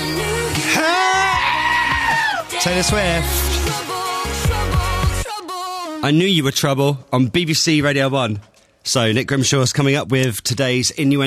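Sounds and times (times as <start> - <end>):
song with steady musical backing: 0.0 - 6.5
goat screaming: 0.8 - 2.5
speech: 2.6 - 3.8, 6.0 - 11.2.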